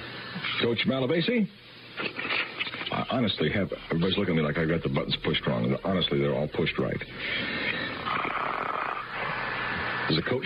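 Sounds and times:
speech: 0.4 - 8.4, 10.1 - 10.4
snoring over a phone line: 7.8 - 10.1.

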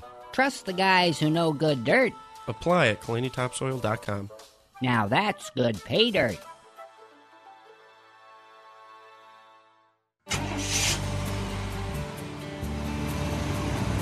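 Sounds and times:
speech: 0.4 - 6.5
truck engine roaring while driving: 10.3 - 14.0.

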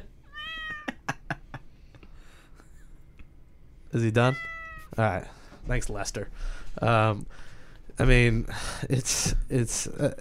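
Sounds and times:
cat meowing: 0.3 - 0.9, 4.3 - 5.0
speech: 3.9 - 10.1.

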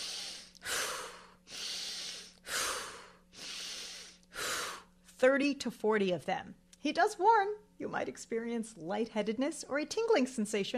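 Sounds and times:
deep short breaths of a breathing exercise: 0.0 - 5.0
speech: 5.2 - 10.7.

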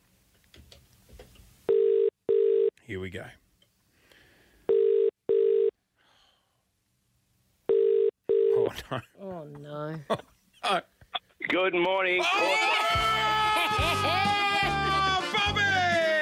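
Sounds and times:
outgoing telephone call double-burst ringback tones: 1.7 - 2.7, 4.7 - 5.7, 7.7 - 8.6
speech: 2.9 - 3.4, 8.9 - 10.9, 11.5 - 13.1
laughter: 12.2 - 16.2.

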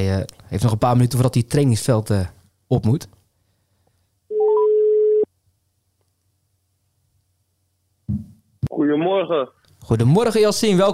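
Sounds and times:
speech: 0.0 - 3.2, 8.1 - 10.9
electronic telephone ring tone as a call is placed: 4.3 - 5.3.

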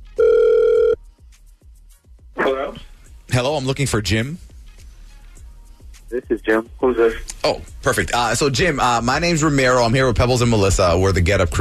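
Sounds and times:
telephone ringback tone while a call is being placed: 0.0 - 1.0
speech: 3.4 - 4.5, 6.2 - 11.6.

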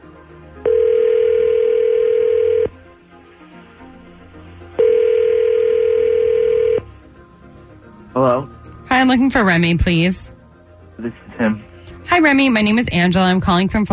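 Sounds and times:
telephone tones as a call is placed: 0.6 - 2.7, 4.8 - 6.9
speech: 9.1 - 10.4, 11.0 - 11.6, 12.2 - 13.9.

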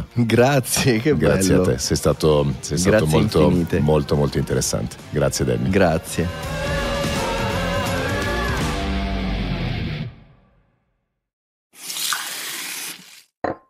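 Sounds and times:
speech: 0.2 - 7.2
busy music: 0.2 - 9.9
water gushing from a tap: 11.8 - 13.3.

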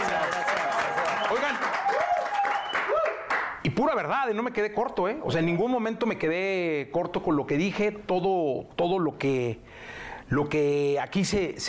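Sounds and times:
crowd applauding a music group being introduced: 0.0 - 3.6
crowd cheers: 0.0 - 3.6
speech: 1.3 - 1.7, 3.8 - 11.6
faint whistles from crowd: 2.5 - 2.9.

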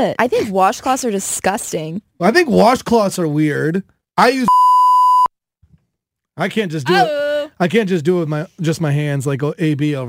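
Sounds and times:
speech: 0.0 - 4.7, 6.4 - 10.0
electronic censor beep over a spoken word: 4.5 - 5.3.

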